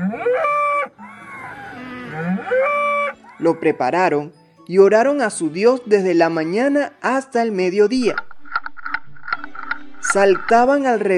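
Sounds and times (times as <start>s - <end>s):
bull mooing: 0.0s - 3.8s
speech: 3.4s - 8.3s, 10.1s - 11.1s.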